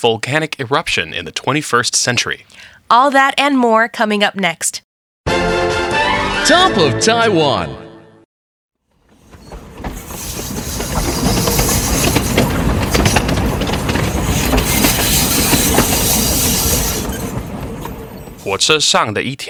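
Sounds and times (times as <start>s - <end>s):
speech: 0.0s - 5.8s, 6.4s - 7.9s, 18.4s - 19.4s
train rumbling and clattering along railway tracks: 8.9s - 18.9s.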